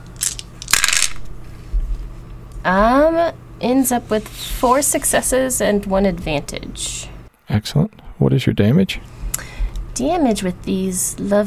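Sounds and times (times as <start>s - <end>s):
four dice rattling on a hard surface: 0.2s - 1.3s
speech: 2.6s - 11.4s.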